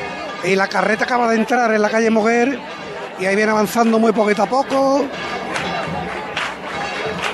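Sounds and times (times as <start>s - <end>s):
outdoor crowd murmur of voices: 0.0s - 7.3s
speech: 0.4s - 5.2s
pilgrims' rhythmic hand clapping: 3.4s - 7.3s.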